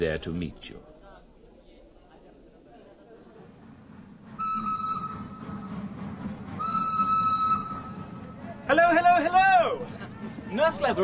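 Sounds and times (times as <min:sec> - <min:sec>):
speech: 0:00.0 - 0:00.9, 0:10.7 - 0:11.0
train pulling in with low rumble: 0:03.0 - 0:11.0
train whistle blasts: 0:04.4 - 0:05.9, 0:06.6 - 0:08.4.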